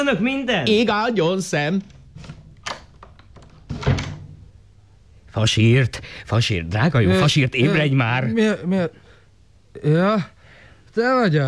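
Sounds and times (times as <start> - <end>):
speech: 0.0 - 2.0, 5.4 - 9.0, 9.8 - 11.4
self-closing door latch knock: 1.8 - 4.6.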